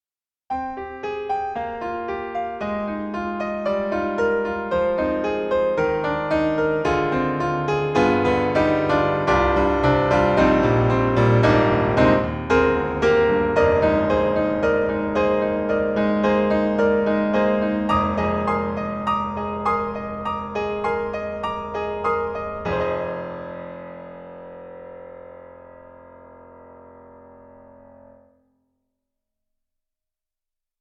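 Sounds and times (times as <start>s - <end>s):
Bosendorfer 290 Viennese piano: 0.5s - 28.8s.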